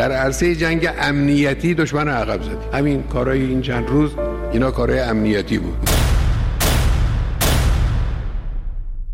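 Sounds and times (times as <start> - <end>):
speech: 0.0 - 6.0
heavy gunshots echoing in the street: 5.8 - 9.0.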